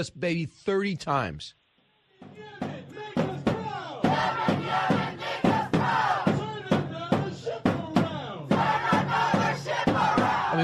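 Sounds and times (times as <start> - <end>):
speech: 0.0 - 1.6
large protest crowd chanting in unison in a city street: 2.1 - 10.6
sharp percussive beats marking the chant cadence: 2.2 - 10.6.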